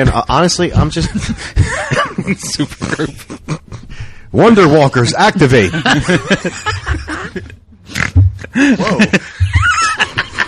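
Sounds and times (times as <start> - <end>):
speech: 0.0 - 7.5, 8.5 - 9.4
person laughing hard with giggling: 1.0 - 4.0, 5.8 - 7.6, 8.4 - 10.4
loud nasal snorts while laughing: 7.8 - 8.2.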